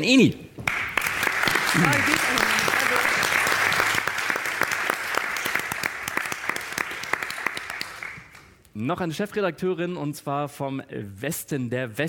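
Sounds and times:
speech: 0.0s - 0.4s, 1.7s - 2.2s, 8.8s - 12.0s
crowd applauding: 0.6s - 8.5s.

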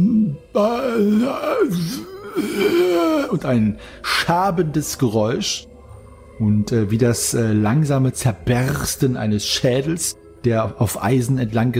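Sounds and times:
person voicing an eerie drawn-out groaning moan: 0.0s - 3.8s
speech: 0.5s - 5.7s, 6.4s - 11.7s.

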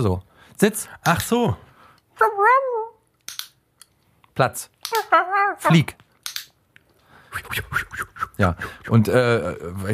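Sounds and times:
speech: 0.0s - 2.7s, 4.4s - 6.0s, 7.4s - 9.9s
small rubber handheld animal-training clicker with shackle hook clicking: 3.2s - 3.9s, 6.2s - 6.6s
person giving short spoken commands: 4.9s - 6.0s.

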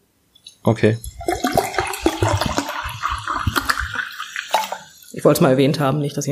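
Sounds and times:
speech: 0.6s - 1.4s, 5.2s - 6.3s
water pouring into a glass: 1.0s - 5.4s.

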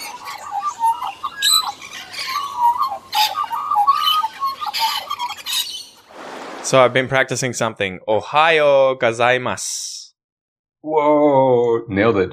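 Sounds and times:
bird squawking in harsh raspy bursts: 0.0s - 6.1s
speech: 6.7s - 9.9s, 10.8s - 12.3s.

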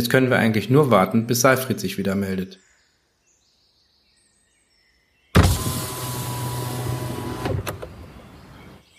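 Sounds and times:
speech: 0.0s - 2.6s
soft thunk of car window stopping: 5.4s - 8.1s
car window being wound down with motor hum: 5.4s - 8.8s.

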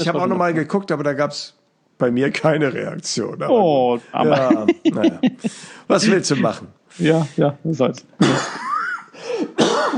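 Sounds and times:
speech: 0.0s - 8.7s
laughter: 4.2s - 6.6s
person coughing while trying to hold it back: 8.2s - 9.9s.

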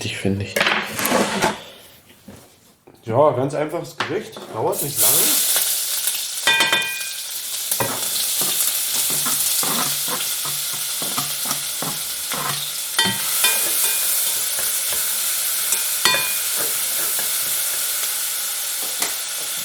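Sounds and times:
speech: 0.0s - 0.9s, 3.1s - 5.3s
bacon sizzling in hot lard in a pan on a stove: 4.7s - 19.6s.

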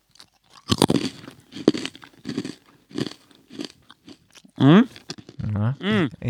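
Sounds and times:
biting into crunchy food: 0.0s - 5.5s
person eating making voiced vocal sounds: 4.6s - 6.2s.

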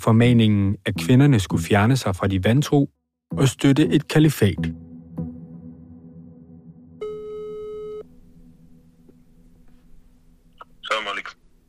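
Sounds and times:
speech: 0.0s - 4.9s
telephone ringback tone during an outgoing call: 7.0s - 8.1s
low hum: 7.0s - 11.6s.

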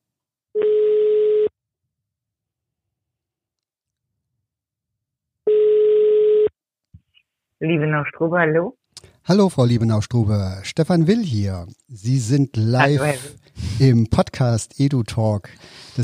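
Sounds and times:
telephone ringing tones: 0.6s - 1.5s, 5.5s - 6.5s
speech: 7.6s - 16.0s.

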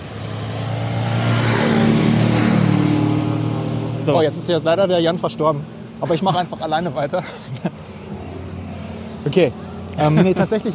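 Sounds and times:
motorcycle engine revving: 0.0s - 6.0s
speech: 4.1s - 7.8s, 9.2s - 10.7s
laughter: 6.0s - 8.3s, 9.9s - 10.7s.

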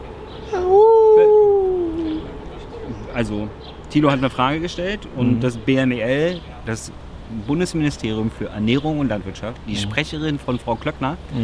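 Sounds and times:
wolf howling: 0.4s - 2.4s
speech: 3.2s - 11.4s.

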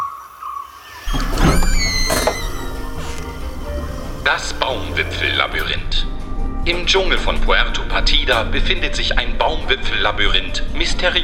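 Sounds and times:
steady synthetic drone: 0.0s - 9.3s
video game mechanical door sliding open: 1.0s - 5.9s
speech: 4.3s - 11.2s.

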